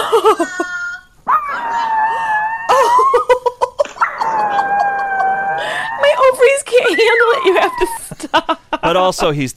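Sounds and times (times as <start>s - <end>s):
speech: 0.1s - 0.6s, 8.9s - 9.5s
dog howling during a video call: 1.2s - 3.3s, 4.0s - 8.1s
laughter: 2.7s - 8.9s.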